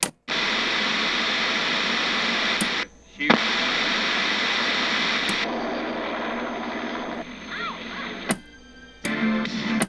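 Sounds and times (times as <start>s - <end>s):
television: 0.3s - 9.8s.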